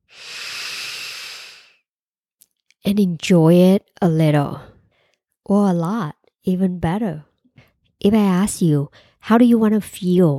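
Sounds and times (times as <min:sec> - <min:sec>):
deep breath exhale: 0:00.0 - 0:01.8
speech: 0:02.9 - 0:04.7, 0:05.5 - 0:07.3, 0:08.0 - 0:10.3.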